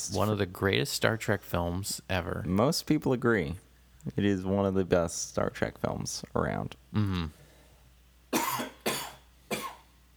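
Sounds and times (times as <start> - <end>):
speech: 0.0 - 7.4
person coughing: 8.3 - 9.9.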